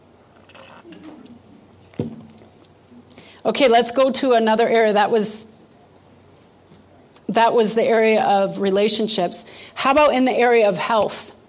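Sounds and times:
faint hum: 0.0 - 11.4
person gulping or swallowing: 0.4 - 1.6
person sipping a drink with soft wet slurps: 0.4 - 1.6
speech: 3.4 - 5.5, 7.4 - 11.4.

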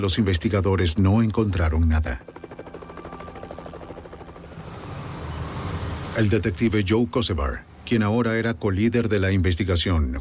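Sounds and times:
speech: 0.0 - 2.4, 6.2 - 10.1
helicopter rotor thumping overhead: 1.2 - 5.2.

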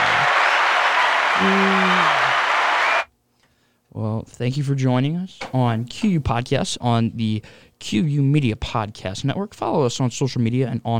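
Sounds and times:
small group applauding: 0.0 - 3.1
speech: 1.4 - 1.8, 4.2 - 10.9.

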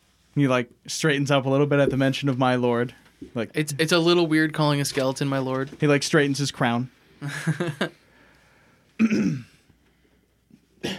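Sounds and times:
speech: 0.4 - 8.0, 9.0 - 9.5
laughter: 7.2 - 7.9
voice imitating a hacking cough: 9.0 - 9.6.

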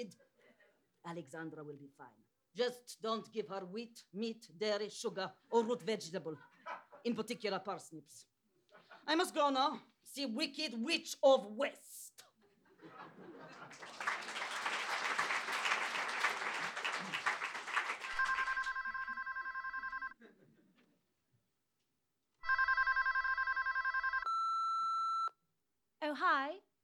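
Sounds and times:
speech: 0.0 - 0.3, 1.0 - 12.3
laughter: 5.5 - 7.4, 8.7 - 9.4, 12.4 - 18.8, 20.2 - 21.0
applause: 13.3 - 19.2
telephone ringing in electronic trills: 18.1 - 20.2, 22.4 - 25.3.

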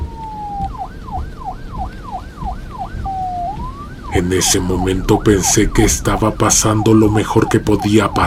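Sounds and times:
car siren wailing and yelping: 0.0 - 8.2
speech: 4.1 - 8.2.

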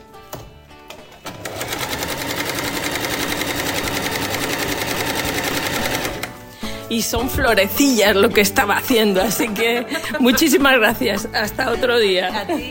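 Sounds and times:
sewing machine running with needle clatter: 1.2 - 6.3
speech: 6.9 - 12.7.

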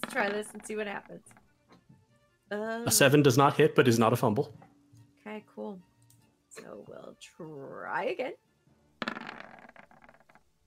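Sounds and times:
dice rolling and clattering on a table: 0.0 - 1.5, 9.0 - 10.6
speech: 0.2 - 1.4, 2.5 - 5.9, 6.6 - 8.4.

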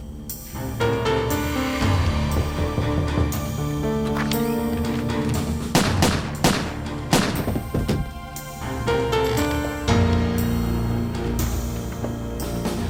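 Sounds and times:
tense musical score: 0.0 - 12.8
gunshots inside a home: 5.7 - 8.0.

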